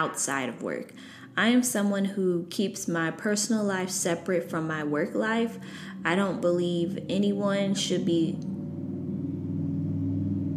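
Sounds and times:
speech: 0.0 - 8.5
loud car engine rumbling outside: 4.3 - 10.5.

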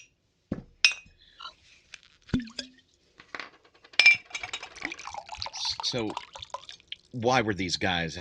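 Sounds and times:
glass clinking: 0.8 - 1.6, 2.4 - 6.8
scotch pouring into a glass: 2.3 - 2.9, 4.3 - 7.2
speech: 5.9 - 6.3, 7.1 - 8.1.

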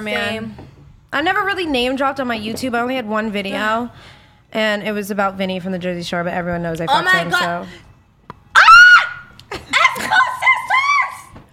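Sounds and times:
speech: 0.0 - 7.9
woman screaming in surprise: 8.5 - 11.3.

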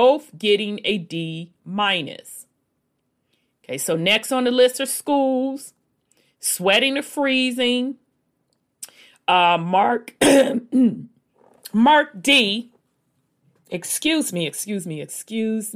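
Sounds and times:
speech: 0.0 - 2.4, 3.7 - 5.8, 6.4 - 8.0, 9.3 - 11.1, 11.7 - 12.7, 13.7 - 15.7
person clearing throat: 10.2 - 11.1.

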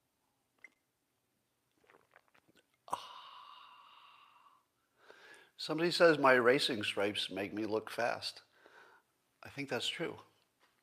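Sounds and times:
slurping sips of coffee from a mug: 1.7 - 3.0
breathy ahh of satisfaction: 2.9 - 5.5
speech: 5.6 - 8.5, 9.6 - 10.3.

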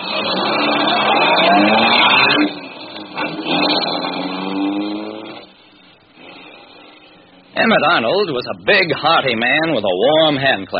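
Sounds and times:
car engine turning over and revving: 0.0 - 5.6
speech: 7.7 - 10.7.

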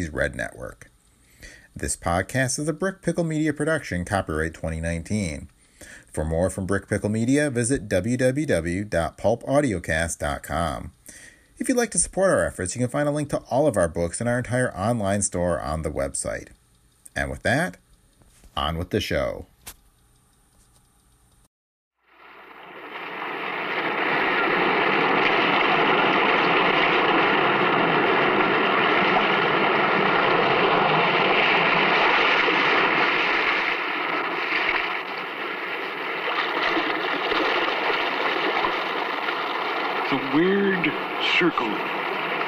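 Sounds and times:
speech: 0.0 - 16.6, 17.2 - 17.8, 18.6 - 19.5, 41.4 - 42.0
restless sea surf washing in a cave: 22.4 - 42.4.

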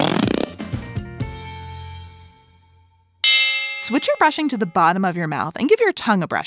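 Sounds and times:
rubber whoopee cushion deflating with a fart sound: 0.0 - 0.6
speech: 3.9 - 6.4.

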